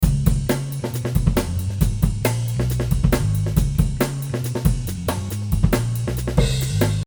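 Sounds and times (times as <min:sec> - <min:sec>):
breakbeat drum groove: 0:00.0 - 0:07.0.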